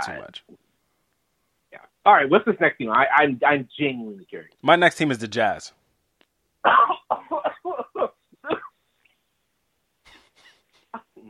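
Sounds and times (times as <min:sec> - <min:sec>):
speech: 0:00.0 - 0:00.6, 0:01.7 - 0:05.8, 0:06.6 - 0:07.5
person coughing: 0:06.6 - 0:08.8.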